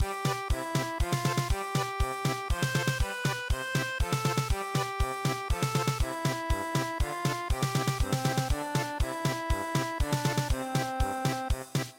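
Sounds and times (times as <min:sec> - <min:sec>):
traditional German polka music: 0:00.0 - 0:11.9.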